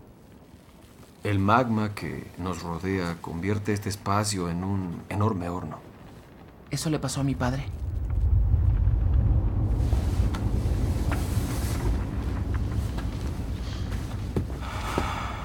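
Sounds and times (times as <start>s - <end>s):
speech: 1.2s - 5.9s, 6.7s - 7.8s
deep rumble of an earthquake inside an air pocket surrounded by lava: 3.8s - 15.4s.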